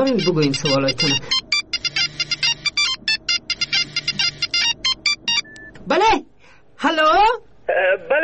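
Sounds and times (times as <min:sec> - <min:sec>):
phone ringtone with rapid bright electronic melody: 0:00.0 - 0:05.7
low steady hum: 0:00.0 - 0:08.1
speech: 0:00.1 - 0:01.4.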